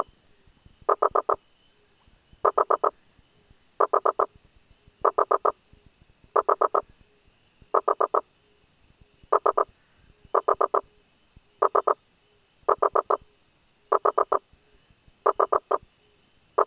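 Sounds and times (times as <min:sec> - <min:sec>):
high-pitched background hum: 0:00.0 - 0:16.6
Rosenberg's gladiator frog Boana rosenbergi knocking calls: 0:00.9 - 0:01.4, 0:02.4 - 0:02.9, 0:03.8 - 0:04.3, 0:05.0 - 0:05.6, 0:06.4 - 0:06.8, 0:07.7 - 0:08.2, 0:09.3 - 0:09.7, 0:10.4 - 0:10.8, 0:11.6 - 0:12.0, 0:12.7 - 0:13.2, 0:13.9 - 0:14.4, 0:15.3 - 0:15.8.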